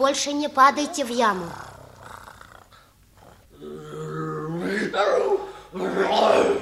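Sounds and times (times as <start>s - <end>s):
speech: 0.0s - 1.7s, 4.9s - 6.6s
tigress roaring: 1.2s - 4.9s.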